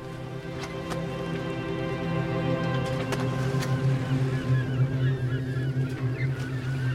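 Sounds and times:
boat engine droning as boat departs by sea: 0:00.0 - 0:06.9
faint birdlike calls: 0:03.2 - 0:06.9.

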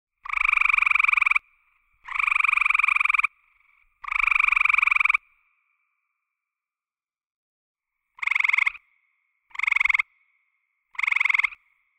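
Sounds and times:
eastern gray tree frog advertisement calls: 0:00.2 - 0:01.4, 0:02.0 - 0:05.3, 0:08.2 - 0:08.8, 0:09.5 - 0:10.1, 0:10.9 - 0:11.6.

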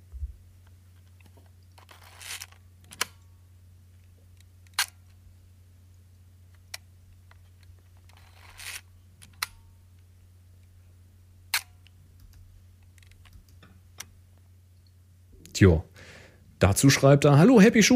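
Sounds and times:
ratcheting winds of a small film camera: 0:01.8 - 0:03.1, 0:08.0 - 0:09.5
speech: 0:15.6 - 0:15.9, 0:16.6 - 0:17.9.

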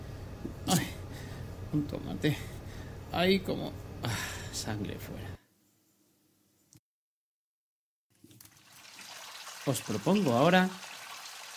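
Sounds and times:
speech: 0:01.7 - 0:05.4, 0:09.7 - 0:10.8
fountain water trickling and splashing: 0:08.4 - 0:11.5.

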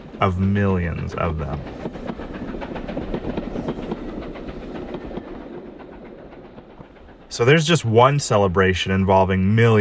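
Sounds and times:
clickety-clack of train wheels over track joints: 0:00.0 - 0:09.7
train rumbling along the rails: 0:00.0 - 0:09.7
speech: 0:00.2 - 0:02.4, 0:07.3 - 0:09.7.

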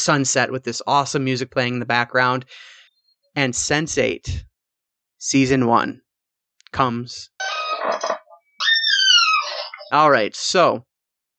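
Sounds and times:
speech: 0:00.0 - 0:02.8, 0:03.4 - 0:04.5, 0:05.2 - 0:06.0, 0:06.7 - 0:08.1, 0:09.9 - 0:10.9
chair creaking and squeaking: 0:07.4 - 0:10.0.

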